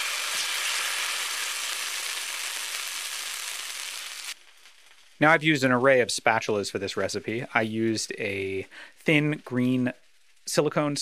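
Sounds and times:
batter sizzling in hot butter on a griddle: 0:00.0 - 0:05.2, 0:09.5 - 0:10.6
speech: 0:05.2 - 0:10.9.

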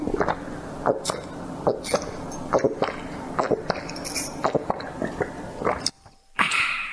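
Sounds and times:
Pinot Gris wine being sipped against the microphone: 0:00.0 - 0:05.9
mouth clicks and smacks: 0:00.0 - 0:06.9.

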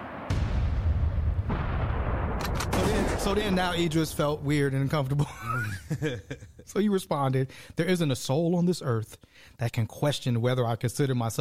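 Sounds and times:
heavy gunshot sound effects: 0:00.0 - 0:05.3
deep rolling rumble: 0:00.3 - 0:05.4
speech: 0:03.2 - 0:11.3
laughter: 0:05.1 - 0:06.7.

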